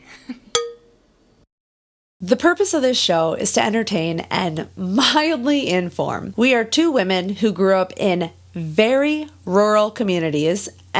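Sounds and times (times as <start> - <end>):
wine glasses clinking in a toast: 0.6 - 1.0
speech: 2.2 - 10.9.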